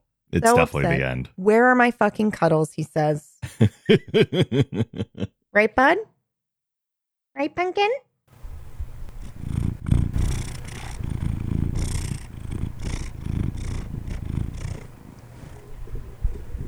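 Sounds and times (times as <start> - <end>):
speech: 0.3 - 6.1, 7.4 - 8.1
laughter: 3.6 - 5.3
cat purring: 8.4 - 16.6.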